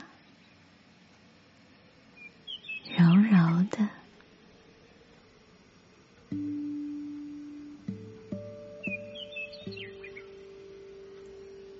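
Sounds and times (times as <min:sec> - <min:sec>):
high bird chirps: 0:02.2 - 0:03.6, 0:08.7 - 0:11.3
soft sustained musical tones: 0:06.2 - 0:11.7.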